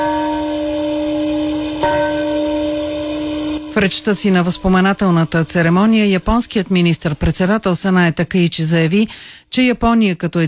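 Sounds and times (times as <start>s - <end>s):
large peace bell ringing at memorial: 0.0s - 7.7s
speech: 3.8s - 10.4s.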